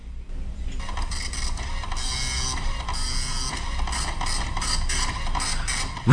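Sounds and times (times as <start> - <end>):
printer printing pages at high speed, whirring and clattering: 0.8 - 6.1.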